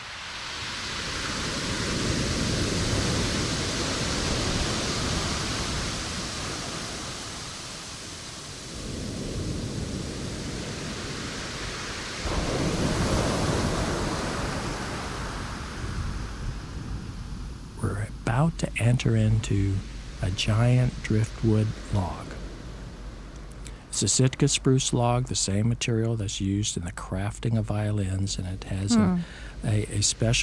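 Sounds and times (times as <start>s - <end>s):
ocean surf washing onto a driftwood-strewn beach: 0.0s - 17.8s, 18.8s - 24.0s
speech: 18.5s - 22.3s, 24.0s - 30.4s.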